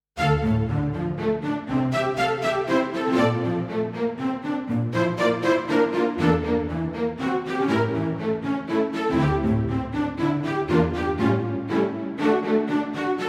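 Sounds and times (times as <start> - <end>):
spiccato strings: 0.2 - 13.2.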